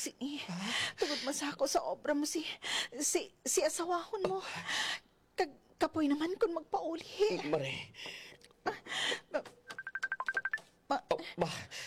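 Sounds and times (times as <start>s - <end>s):
speech: 0.0s - 9.5s, 10.9s - 11.8s
mobile phone ringing with electronic beeps: 9.7s - 10.6s.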